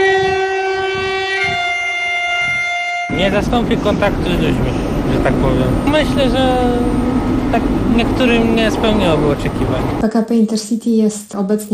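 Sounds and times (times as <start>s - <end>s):
loud sustained tonal drone at a train station: 0.0s - 10.0s
low rumbling at a train station: 3.1s - 10.0s
speech: 3.2s - 11.7s.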